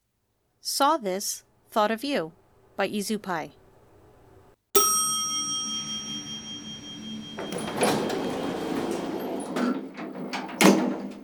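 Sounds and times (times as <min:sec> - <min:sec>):
speech: 0:00.6 - 0:03.6
bright elevator chime: 0:04.8 - 0:11.2.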